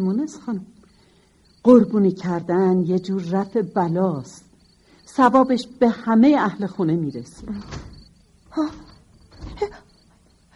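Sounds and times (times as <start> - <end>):
speech: 0.0 - 0.8, 1.6 - 4.5, 5.1 - 7.9, 8.5 - 8.8
courtyard door creaking and scraping open: 7.0 - 10.5.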